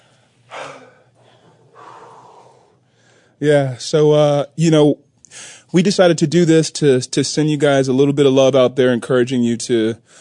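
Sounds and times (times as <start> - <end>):
band member catching their breath, heavy breathing: 0.0 - 3.4, 5.3 - 5.7, 10.0 - 10.1
speech: 3.4 - 10.1.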